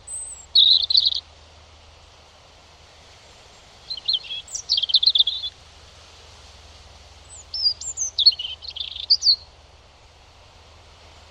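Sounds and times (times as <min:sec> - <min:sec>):
European robin singing whistles and warbled phrases: 0:00.0 - 0:01.3, 0:03.8 - 0:05.6, 0:07.2 - 0:09.5.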